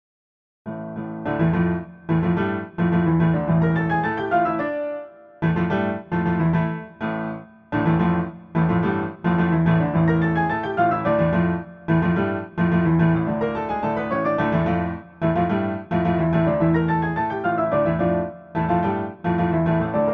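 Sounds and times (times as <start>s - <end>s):
piano jingle: 0.7s - 20.1s.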